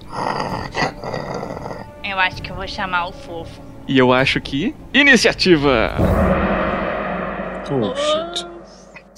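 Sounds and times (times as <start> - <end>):
creature growling: 0.0 - 1.9
speech: 2.1 - 6.5, 7.7 - 8.5.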